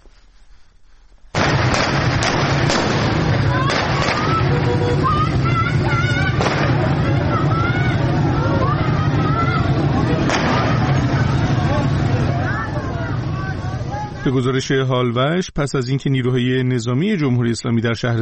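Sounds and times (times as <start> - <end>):
gunshots: 1.3 - 4.9, 6.2 - 7.4, 10.1 - 12.0
crowd of stone-throwing protesters shouting: 2.1 - 14.4
speech: 14.3 - 18.2.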